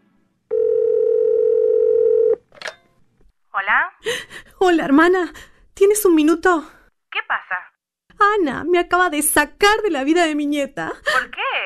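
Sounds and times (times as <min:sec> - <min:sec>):
telephone dial tone: 0:00.5 - 0:02.4
speech: 0:04.0 - 0:06.8, 0:08.3 - 0:11.1.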